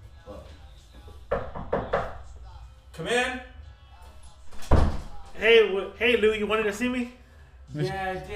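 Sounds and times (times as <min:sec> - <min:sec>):
speech: 0:03.0 - 0:03.5, 0:05.4 - 0:08.3
heavy door slamming shut: 0:04.6 - 0:05.2.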